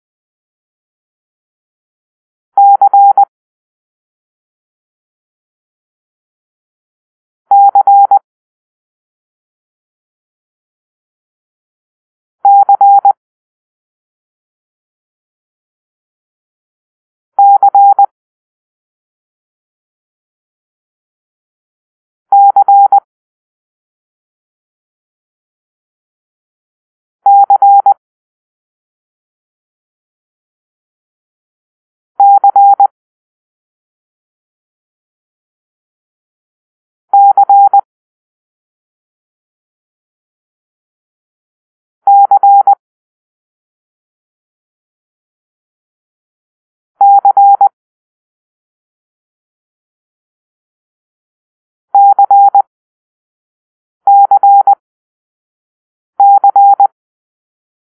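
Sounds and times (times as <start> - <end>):
Morse code tones for the letter C: 2.6 - 3.2, 7.5 - 8.2, 17.4 - 18.1, 22.3 - 23.0, 27.3 - 28.0, 32.2 - 32.9, 37.1 - 37.8, 42.1 - 42.8, 47.0 - 47.7, 52.0 - 52.7, 54.1 - 54.8, 56.2 - 56.9.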